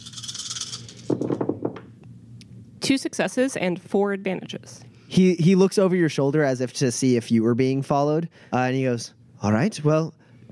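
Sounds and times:
dice rattling and shaking: 0:00.0 - 0:01.5
dice clattering onto a hard table: 0:00.0 - 0:01.8
speech: 0:02.9 - 0:10.5.

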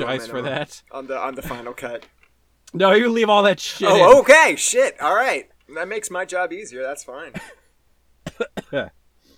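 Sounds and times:
speech: 0:00.0 - 0:07.6, 0:08.4 - 0:09.0
unwell person coughing roughly: 0:08.3 - 0:08.9.

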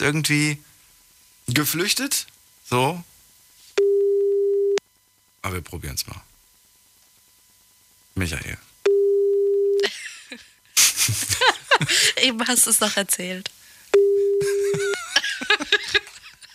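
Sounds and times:
speech: 0:00.0 - 0:00.7, 0:01.5 - 0:03.1, 0:05.4 - 0:06.3, 0:08.2 - 0:08.7, 0:11.1 - 0:13.6
telephone ringback tone during outgoing call: 0:03.8 - 0:04.8, 0:08.9 - 0:09.8, 0:14.0 - 0:14.9
laughter: 0:09.8 - 0:12.4, 0:14.4 - 0:16.5.

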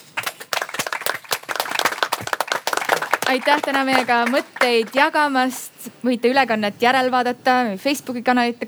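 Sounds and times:
audience applauding: 0:00.0 - 0:05.4
speech: 0:03.3 - 0:08.6.

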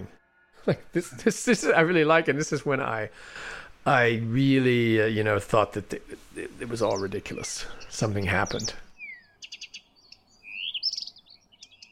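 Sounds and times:
speech: 0:00.0 - 0:08.8
Blyth's reed warbler singing in Finland: 0:06.6 - 0:11.8.

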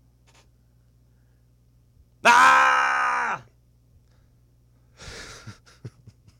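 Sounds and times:
person screaming loudly: 0:02.2 - 0:03.5.

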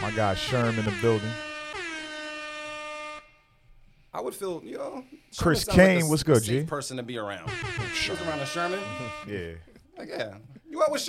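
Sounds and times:
loud sustained air horn blast: 0:00.0 - 0:03.5, 0:07.5 - 0:09.5
speech: 0:00.1 - 0:01.5, 0:04.1 - 0:11.0.

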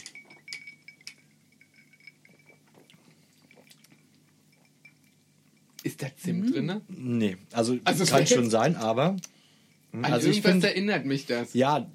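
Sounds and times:
glasses of gin clinking during a toast: 0:00.0 - 0:06.0
faint liquid sounds: 0:00.2 - 0:06.3
speech: 0:05.9 - 0:09.4, 0:10.0 - 0:11.9.

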